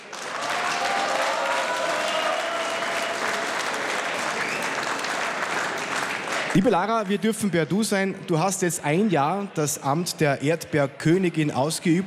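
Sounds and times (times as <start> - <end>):
audience applause at a stage event: 0.0 - 7.1
speech: 6.6 - 12.0.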